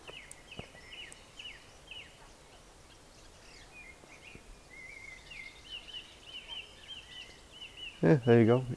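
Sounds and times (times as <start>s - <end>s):
various birds chirping and whistling outdoors: 0.0s - 8.7s
speech: 8.0s - 8.7s.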